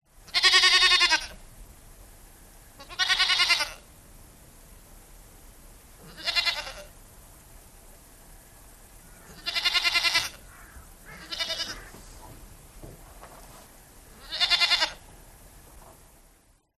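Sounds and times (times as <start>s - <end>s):
goat bleating: 0.3s - 1.4s, 2.8s - 3.9s, 6.0s - 6.9s, 9.3s - 10.5s, 11.1s - 12.0s, 14.1s - 15.1s.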